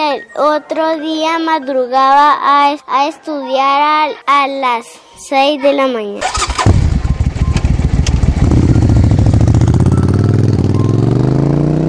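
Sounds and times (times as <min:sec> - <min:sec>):
speech: 0:00.2 - 0:06.5
motorcycle engine running: 0:06.2 - 0:11.8.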